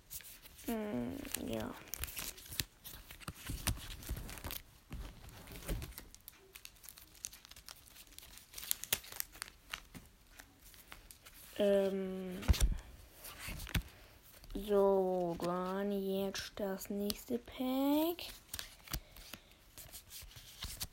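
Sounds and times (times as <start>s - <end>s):
plastic bag crinkling as something is packed into it: 0.6s - 12.0s
speech: 0.7s - 1.9s, 11.6s - 12.6s, 14.6s - 18.4s.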